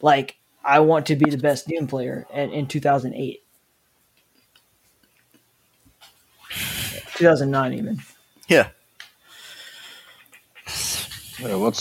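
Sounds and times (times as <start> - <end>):
speech: 0.0 - 3.4, 7.2 - 8.8, 11.4 - 11.7
heavy breathing: 6.4 - 7.2, 9.2 - 11.7.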